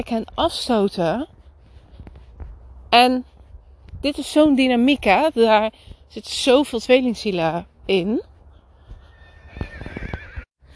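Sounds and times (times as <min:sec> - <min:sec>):
speech: 0:00.0 - 0:01.3, 0:02.9 - 0:03.3, 0:04.0 - 0:08.3
horse in a meadow whinnying loudly: 0:09.0 - 0:10.5.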